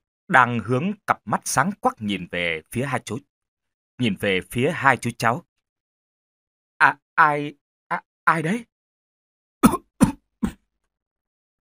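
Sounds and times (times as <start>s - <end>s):
speech: 0.3s - 3.3s, 4.0s - 5.5s, 6.8s - 8.7s
short dry chesty coughs at night: 9.6s - 10.6s.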